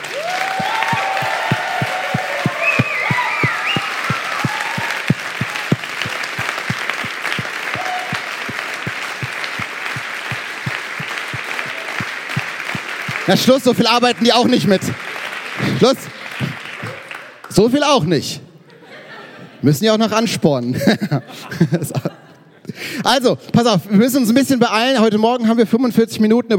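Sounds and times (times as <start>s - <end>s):
crowd shouts and whoops: 0.0s - 5.8s, 7.7s - 8.3s
large crowd applauding: 0.0s - 17.9s
speech: 13.3s - 15.0s, 15.6s - 16.1s, 17.6s - 18.4s, 19.6s - 22.1s, 23.0s - 26.5s
laughter: 18.6s - 19.6s, 20.7s - 22.8s.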